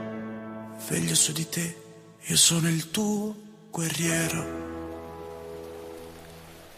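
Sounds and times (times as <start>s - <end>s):
speech: 0.8s - 4.7s
rain falling: 3.8s - 6.7s.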